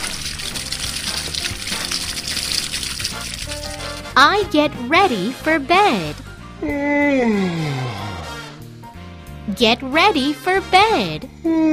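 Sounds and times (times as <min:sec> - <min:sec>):
water pouring and splashing while watering flowers: 0:00.0 - 0:04.3
speech: 0:04.2 - 0:08.0, 0:09.6 - 0:11.7.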